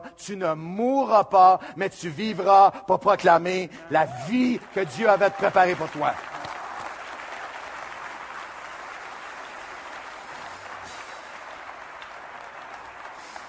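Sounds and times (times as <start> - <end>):
speech: 0.2 - 6.3
audience applauding in a reverberant church: 3.9 - 13.4.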